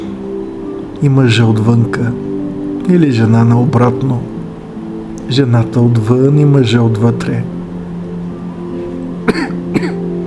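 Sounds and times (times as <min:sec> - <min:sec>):
steady low humming drone: 0:00.0 - 0:10.2
speech: 0:01.0 - 0:02.3, 0:02.9 - 0:04.3, 0:05.3 - 0:07.6, 0:09.3 - 0:09.5
person coughing: 0:09.2 - 0:10.1.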